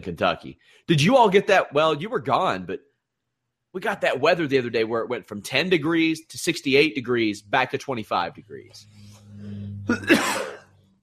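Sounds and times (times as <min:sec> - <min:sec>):
speech: 0:00.0 - 0:02.9, 0:03.7 - 0:10.6
low steady hum: 0:06.6 - 0:11.0
cough into both cupped hands: 0:09.9 - 0:10.7.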